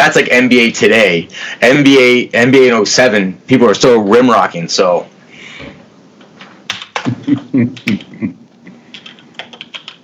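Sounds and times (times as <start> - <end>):
speech: 0.0 - 5.1, 7.3 - 8.4
typing on a computer keyboard: 6.7 - 8.1, 8.9 - 10.0.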